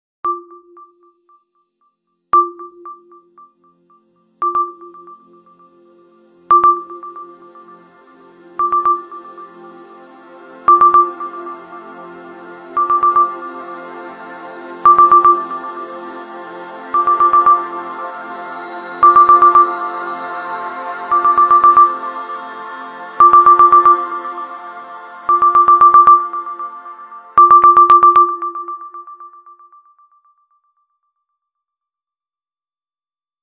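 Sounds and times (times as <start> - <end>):
mobile phone clock alert: 2.4 - 3.5, 4.4 - 5.6, 6.5 - 7.6, 8.6 - 9.5, 10.7 - 11.7, 12.8 - 13.6, 14.9 - 15.7, 17.0 - 17.8, 19.0 - 19.9, 21.1 - 22.1, 23.2 - 24.3, 25.3 - 26.6, 27.4 - 29.7.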